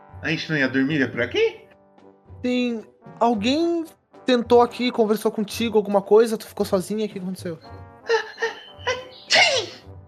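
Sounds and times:
speech: 0.2 - 1.6, 2.4 - 8.3
person sneezing from dust: 9.3 - 9.9.

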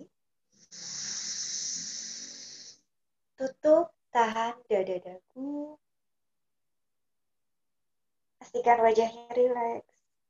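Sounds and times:
slow inhale through left nostril: 0.5 - 2.9
speech: 4.8 - 5.5, 8.6 - 9.9.

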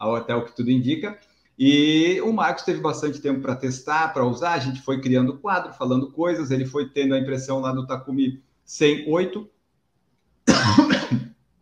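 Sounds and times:
speech: 0.0 - 9.6
person coughing after choking: 10.5 - 11.3.

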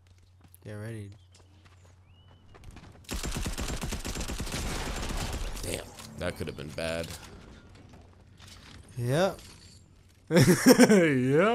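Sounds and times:
speech: 0.7 - 1.2, 5.7 - 7.3, 9.0 - 9.5, 10.3 - 11.5
rapid gunfire from a gun in a video game: 3.1 - 5.7
laughter: 10.3 - 11.5.

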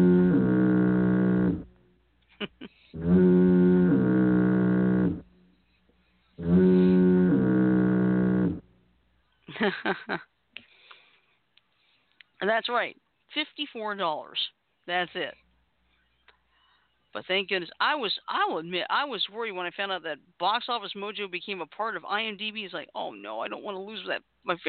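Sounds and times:
deep droning foghorn blasts: 0.0 - 1.8, 3.0 - 5.4, 6.4 - 8.7
speech: 9.7 - 10.3, 12.5 - 15.4, 17.2 - 24.6.

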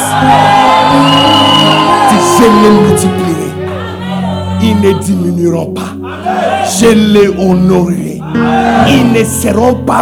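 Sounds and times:
loud crowd shouting and whooping in joyful excitement: 0.0 - 5.2, 6.0 - 7.3, 8.2 - 9.3
speech: 0.2 - 1.2, 2.4 - 3.3, 4.6 - 10.0.

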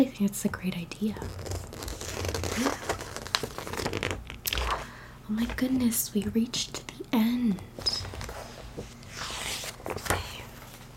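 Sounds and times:
speech: 0.0 - 1.6, 2.6 - 2.9, 5.3 - 8.1
magazine pages being flipped: 1.2 - 5.6, 8.0 - 10.9.

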